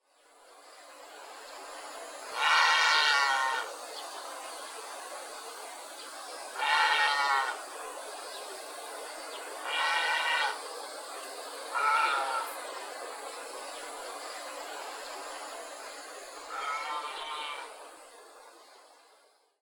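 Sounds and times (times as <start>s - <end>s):
grey heron calling in Saitama: 2.3s - 3.7s, 6.6s - 7.5s, 9.6s - 10.6s, 11.7s - 12.6s, 16.5s - 17.7s.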